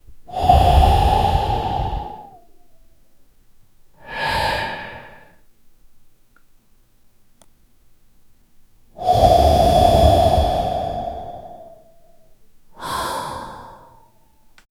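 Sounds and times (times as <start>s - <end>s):
person slowly exhaling through nose: 0.3s - 2.5s, 4.0s - 5.4s, 9.0s - 12.1s, 12.8s - 14.4s.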